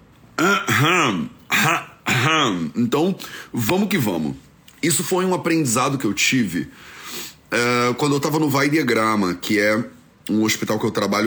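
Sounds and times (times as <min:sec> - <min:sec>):
light throat clearing: 0:00.4 - 0:02.8
speech: 0:00.4 - 0:11.2.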